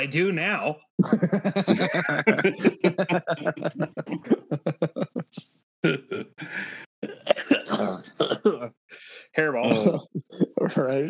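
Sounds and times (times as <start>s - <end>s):
speech: 0.0s - 6.7s, 9.0s - 11.0s
laughter: 1.0s - 5.4s, 9.6s - 11.0s
person coughing: 1.7s - 4.5s, 7.0s - 8.7s, 9.6s - 11.0s.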